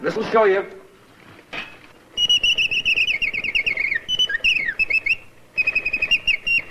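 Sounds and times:
mechanical toy bird trilling a warbling song: 2.2 - 6.7.

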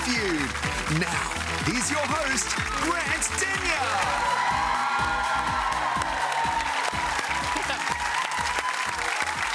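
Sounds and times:
TV game show studio audience applauding and cheering: 0.0 - 9.5
speech: 0.2 - 6.2.

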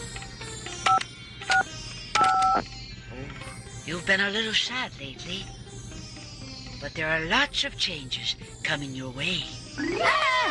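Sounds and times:
telephone keypad tones dialing a number: 0.9 - 2.6
speech: 3.9 - 5.6, 6.8 - 10.4.

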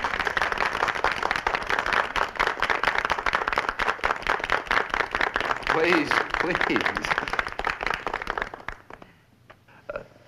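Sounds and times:
class applauding in a room: 0.0 - 9.2
speech: 5.8 - 7.4.

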